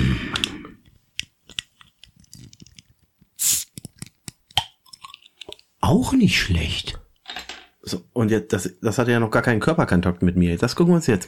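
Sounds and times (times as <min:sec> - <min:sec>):
small clicks and handling noises: 0:00.4 - 0:05.7
bottle of non-alcoholic wheat beer being opened with hiss of escaping gas: 0:03.4 - 0:03.9
speech: 0:05.9 - 0:07.0, 0:07.9 - 0:11.2.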